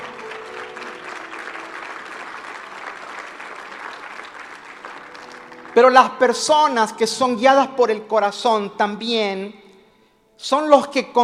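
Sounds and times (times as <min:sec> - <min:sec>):
church audience applauding: 0:00.0 - 0:06.8
speech: 0:05.8 - 0:09.6, 0:10.4 - 0:11.2.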